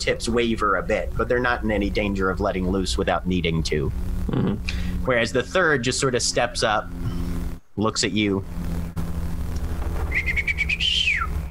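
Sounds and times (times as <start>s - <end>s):
speech: 0.0s - 7.2s, 7.8s - 8.8s
low steady hum: 0.0s - 11.5s
piercing bird call: 10.0s - 11.5s.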